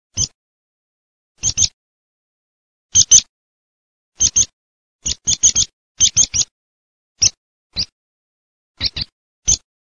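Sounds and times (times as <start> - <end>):
meadow pipit: 1.4 - 1.8, 2.9 - 3.3, 4.2 - 6.5, 7.2 - 8.0, 8.8 - 9.7.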